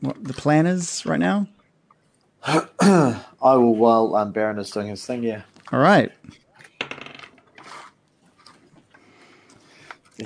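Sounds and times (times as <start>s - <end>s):
speech: 0.0s - 1.6s, 2.4s - 6.4s
dice rolling on a hard tabletop: 6.6s - 7.7s.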